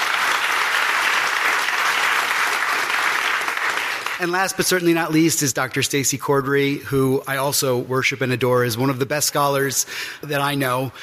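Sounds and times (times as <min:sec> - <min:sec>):
audience applause: 0:00.0 - 0:04.6
speech: 0:04.2 - 0:11.0.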